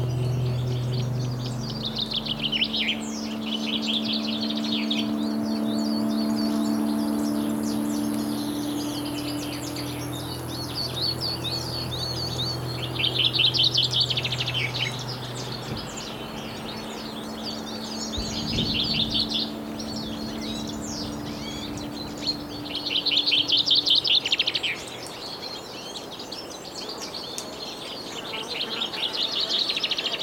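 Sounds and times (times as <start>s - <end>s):
bird trilling bright song: 0.0s - 26.2s
faint low hum: 0.0s - 26.4s
chorus of birds singing in a high-altitude fir forest: 0.0s - 30.2s.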